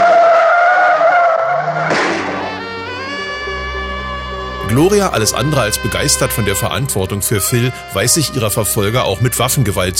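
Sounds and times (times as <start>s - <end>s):
car tires screeching during hard acceleration: 0.0s - 6.5s
speech: 4.8s - 9.9s.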